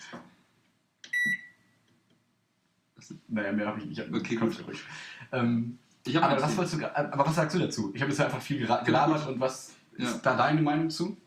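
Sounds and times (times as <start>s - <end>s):
microwave oven beep: 1.1s - 1.6s
speech: 3.1s - 11.2s.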